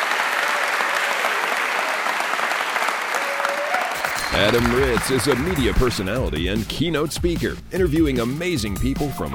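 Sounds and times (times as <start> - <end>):
audience applause: 0.0 - 6.3
speech: 4.3 - 9.3.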